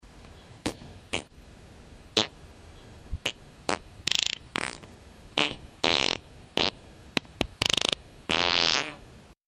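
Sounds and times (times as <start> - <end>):
quirky fart: 3.2 - 9.0.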